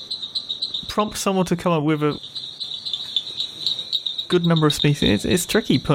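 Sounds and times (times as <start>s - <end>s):
Raorchestes tree frogs calling in a dense chorus: 0.0s - 5.9s
speech: 1.0s - 2.4s, 4.3s - 5.9s.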